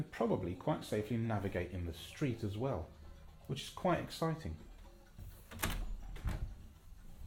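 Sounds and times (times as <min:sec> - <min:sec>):
speech: 0:00.0 - 0:04.7
bathroom door being pushed shut: 0:05.5 - 0:06.6.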